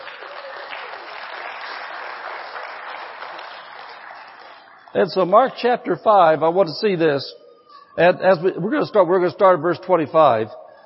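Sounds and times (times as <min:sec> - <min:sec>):
large group clapping loudly: 0:00.0 - 0:05.4
speech: 0:04.9 - 0:07.4, 0:08.0 - 0:10.6.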